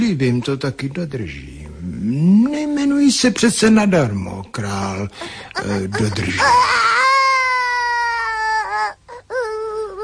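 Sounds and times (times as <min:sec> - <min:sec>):
speech: 0:00.1 - 0:06.8
baby wailing: 0:05.2 - 0:10.0.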